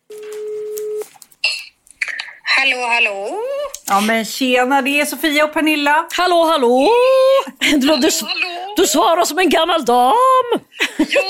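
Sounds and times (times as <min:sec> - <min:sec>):
phone call ringback tone: 0:00.1 - 0:01.0
speech: 0:02.6 - 0:11.2
laughter: 0:10.7 - 0:11.2.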